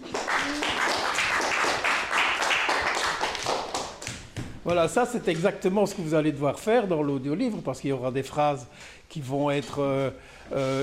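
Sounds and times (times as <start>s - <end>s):
group of people applauding: 0.0s - 4.2s
speech: 4.7s - 10.8s.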